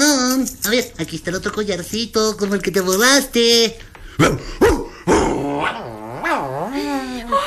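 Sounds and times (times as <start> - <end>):
speech: 0.6 - 5.9
dog growl-like vocalization: 4.7 - 7.1.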